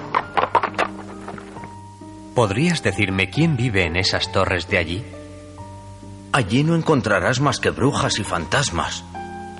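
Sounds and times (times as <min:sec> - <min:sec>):
horse hoofbeats of an approaching rider: 0:00.0 - 0:01.8
speech: 0:02.4 - 0:05.2, 0:06.4 - 0:09.2.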